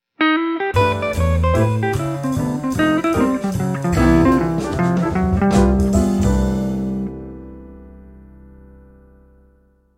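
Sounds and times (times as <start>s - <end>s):
jazzy blues turnaround played on guitar: 0.2s - 7.6s.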